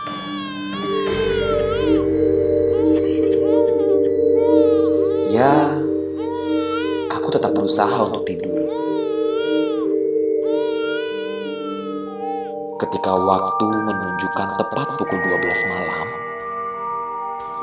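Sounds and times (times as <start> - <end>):
baby crying loudly: 0.0 - 13.2
speech: 7.7 - 8.9, 12.8 - 16.2.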